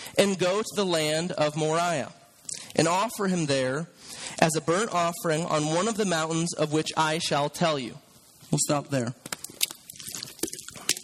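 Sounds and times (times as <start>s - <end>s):
speech: 0.2s - 2.2s, 2.8s - 9.3s
person sipping water: 2.4s - 2.8s, 9.3s - 11.0s
soft wet slurping and mouth sounds with clicks: 2.5s - 2.8s, 9.4s - 11.0s.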